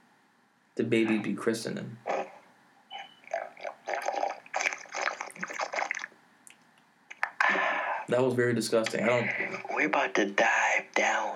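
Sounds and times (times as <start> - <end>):
speech: 0.8 - 2.1, 8.1 - 11.3
gulping and slurping of water at the microphone: 3.1 - 6.6.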